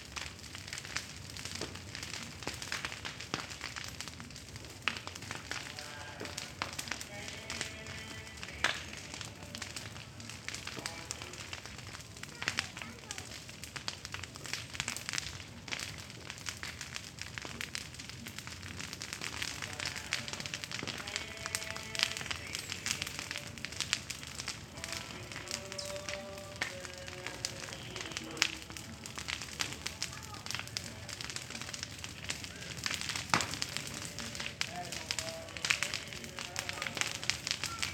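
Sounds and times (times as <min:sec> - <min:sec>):
wasteland burning for corn planting: 0:00.0 - 0:37.9
radio changing stations from reggae to ranchera in a house above: 0:03.5 - 0:12.4, 0:18.6 - 0:37.9.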